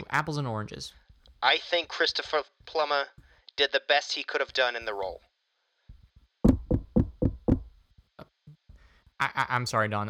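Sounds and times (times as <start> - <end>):
speech: 0.1 - 5.3, 9.2 - 10.0
firm knocking on a door: 5.9 - 7.8.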